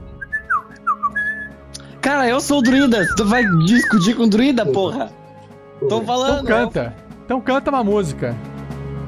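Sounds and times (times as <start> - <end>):
person whistling bird-like chirps and warbles: 0.1 - 1.6, 2.6 - 4.3
speech: 2.1 - 5.2, 5.8 - 8.5.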